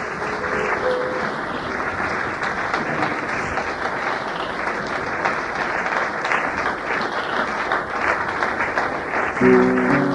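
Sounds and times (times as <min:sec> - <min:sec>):
church congregation applauding and cheering: 0:00.0 - 0:10.1.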